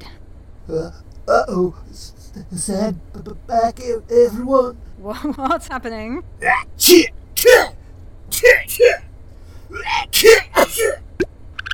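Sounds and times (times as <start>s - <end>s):
speech: 0.7s - 9.1s, 9.7s - 11.0s
person sneezing: 10.2s - 11.0s.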